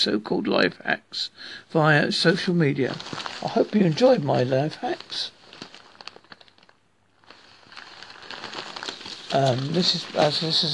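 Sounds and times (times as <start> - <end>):
speech: 0.0 - 5.4, 9.3 - 10.7
paper crinkling while being handled: 2.8 - 10.7.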